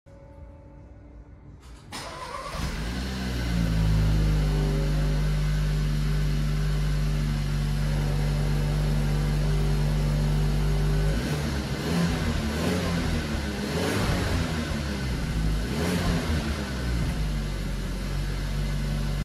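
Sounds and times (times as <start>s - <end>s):
car: 1.6s - 19.2s.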